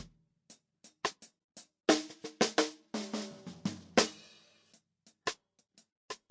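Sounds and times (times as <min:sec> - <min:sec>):
snare drum recorded through a snare microphone: 0:01.9 - 0:04.4.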